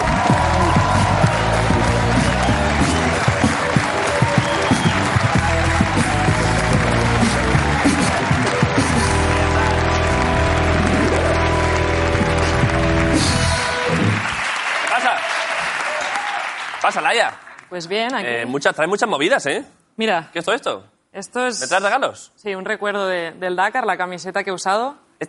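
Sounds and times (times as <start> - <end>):
music: 0.0 - 16.0
studio audience applause for an arriving guest: 0.0 - 17.7
speech: 17.1 - 25.2.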